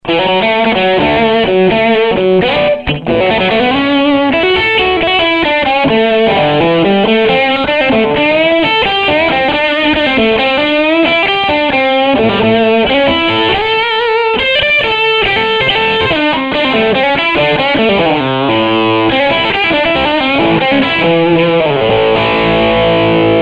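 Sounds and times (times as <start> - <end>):
electric guitar through Marshall JTM-50 amplifier: 0.0 - 23.3.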